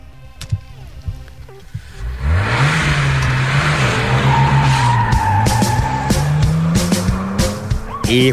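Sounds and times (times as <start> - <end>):
car engine starting and revving hard: 1.0 - 8.3
loud tyre squeal and skidding: 2.6 - 8.3
speech: 8.1 - 8.3.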